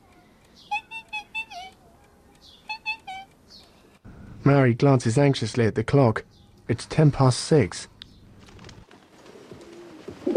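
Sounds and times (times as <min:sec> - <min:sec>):
speech: 0:04.4 - 0:07.9
pigeons cooing in a coop on a hillside overlooking the sea: 0:09.2 - 0:10.3.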